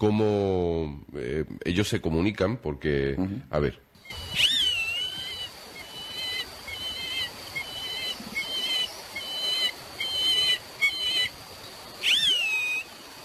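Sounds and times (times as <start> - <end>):
speech: 0.0 - 4.6
steady hiss: 0.0 - 13.2
bird's faint whistling call: 4.0 - 13.2.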